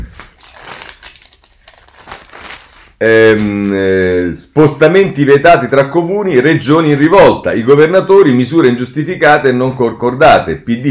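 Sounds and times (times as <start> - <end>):
newspaper pages being turned: 0.0 - 3.9
speech: 3.0 - 10.8.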